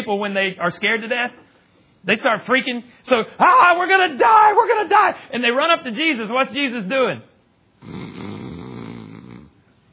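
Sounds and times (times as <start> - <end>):
speech: 0.1 - 8.3
man imitating loud snoring: 7.8 - 9.6.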